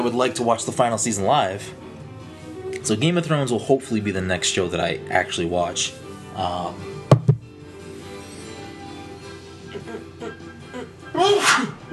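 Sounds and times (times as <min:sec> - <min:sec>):
speech: 0:00.0 - 0:01.9, 0:02.8 - 0:06.9
sharp knocks: 0:07.1 - 0:07.5
forceful sneeze: 0:11.2 - 0:11.9.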